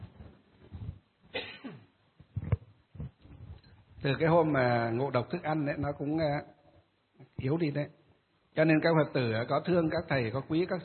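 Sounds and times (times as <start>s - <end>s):
person coughing: 1.3s - 1.9s
speech: 4.0s - 6.6s, 7.4s - 8.0s, 8.6s - 10.8s.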